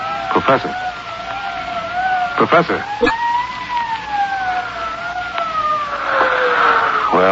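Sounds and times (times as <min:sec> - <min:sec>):
police sirens wailing: 0:00.0 - 0:07.3
speech: 0:00.4 - 0:00.9, 0:02.4 - 0:03.3, 0:07.2 - 0:07.3.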